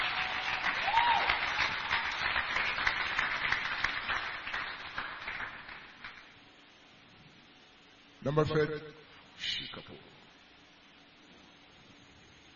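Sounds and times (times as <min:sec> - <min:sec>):
audience applause: 0:00.0 - 0:06.2
speech: 0:08.2 - 0:10.3.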